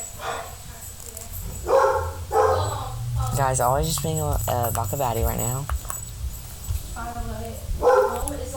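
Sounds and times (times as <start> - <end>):
dog barking: 0.0 - 0.7, 1.5 - 3.0, 7.7 - 8.4
dog whimpering: 1.4 - 3.4
speech: 3.4 - 5.8.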